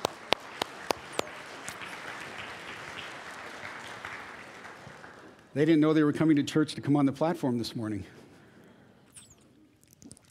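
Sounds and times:
audience applause: 0.0s - 5.5s
speech: 5.6s - 8.2s.

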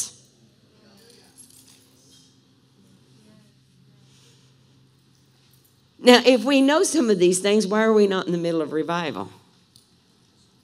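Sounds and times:
set of keys jangling: 1.0s - 2.3s, 4.9s - 5.9s
speech: 6.0s - 9.4s.

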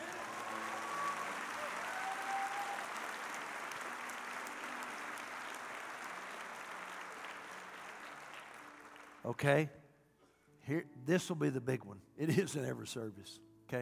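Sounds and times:
large audience applauding: 0.0s - 9.4s
speech: 9.3s - 9.8s, 10.7s - 13.8s.

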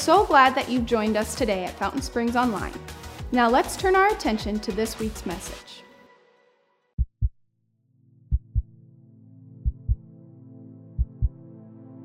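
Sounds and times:
speech: 0.0s - 5.8s
heartbeat thumping in lub-dub pairs: 7.0s - 7.4s, 8.3s - 8.7s, 9.6s - 10.0s, 11.0s - 11.4s.

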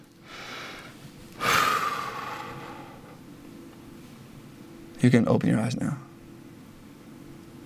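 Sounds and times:
big deep breath taken during prayer: 0.2s - 3.2s
speech: 5.0s - 6.1s.

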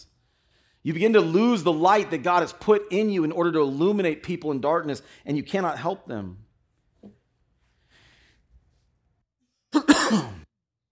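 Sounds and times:
speech: 0.8s - 6.4s, 10.1s - 10.4s
single loud harsh cough: 9.8s - 10.5s.

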